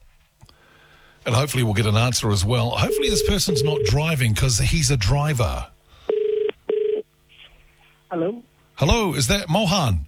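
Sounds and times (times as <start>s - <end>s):
speech: 1.3s - 5.8s, 8.1s - 10.0s
telephone keypad dialing tones: 2.9s - 4.0s.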